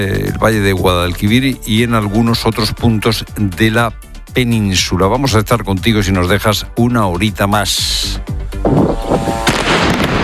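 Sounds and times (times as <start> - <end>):
speech: 0.0 - 9.1
gunfire exchanged at night in Lebanon between two armed sides: 9.4 - 10.2.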